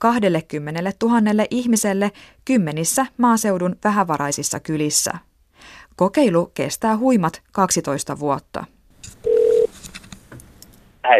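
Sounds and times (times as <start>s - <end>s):
speech: 0.0s - 8.8s
short electronic telephone ring tone: 9.2s - 9.7s.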